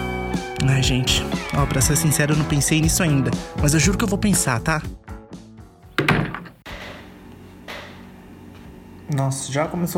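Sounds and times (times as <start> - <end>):
speech: 0.6 - 5.0, 9.1 - 9.9
chair creaking and thumping as speaker shifts weight: 5.9 - 7.0.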